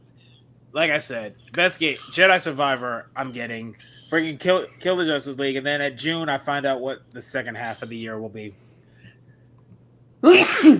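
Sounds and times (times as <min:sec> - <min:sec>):
speech: 0:00.7 - 0:08.6, 0:10.2 - 0:10.7
person sneezing: 0:10.2 - 0:10.7.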